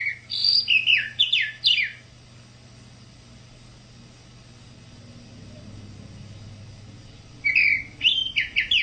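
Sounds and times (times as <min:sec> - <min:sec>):
tropical mockingbird singing: 0:00.0 - 0:02.1, 0:07.4 - 0:08.8
faint low hum: 0:00.0 - 0:08.8.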